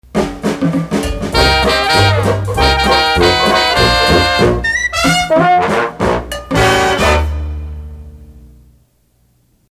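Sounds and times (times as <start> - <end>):
Dixieland jazz instrumental: 0.4 - 7.7.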